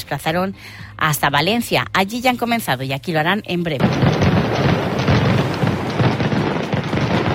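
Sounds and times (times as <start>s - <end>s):
speech: 0.1s - 4.8s
firecracker explosions: 3.8s - 7.3s.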